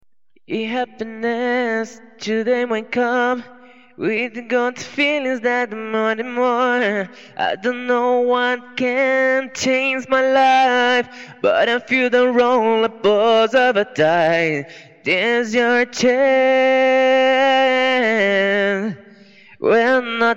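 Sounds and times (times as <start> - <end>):
a cappella dance vocals at 130 BPM in B minor: 0.5 - 20.3.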